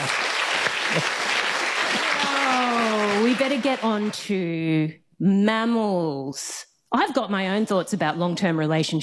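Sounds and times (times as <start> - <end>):
crowd clapping: 0.0 - 4.2
faint voices and cheers: 1.9 - 3.3
speech: 3.4 - 9.0.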